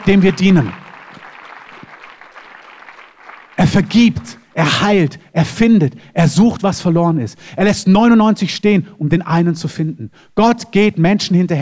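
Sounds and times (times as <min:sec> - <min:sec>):
speech: 0:00.0 - 0:00.8, 0:03.7 - 0:11.6
congregation applause: 0:00.0 - 0:04.6.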